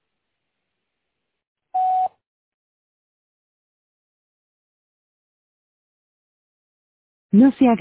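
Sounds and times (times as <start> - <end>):
electronic voicemail recording tone beep: 1.8 - 2.1
speech: 7.3 - 7.7.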